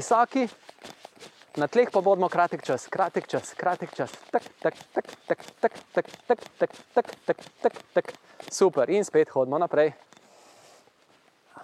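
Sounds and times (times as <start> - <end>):
speech: 0.0 - 1.0, 1.6 - 10.1
footsteps of someone running in place as an exercise: 0.0 - 10.0.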